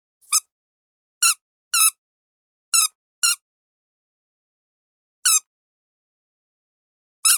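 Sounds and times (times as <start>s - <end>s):
duck toy squeaking: 1.2s - 2.0s, 2.8s - 3.4s, 5.3s - 5.5s.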